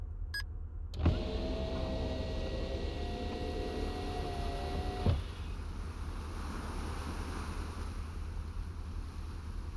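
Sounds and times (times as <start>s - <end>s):
wind: 0.0s - 9.7s
motorized train carriage window sliding open: 0.9s - 5.6s
surf: 5.4s - 9.7s.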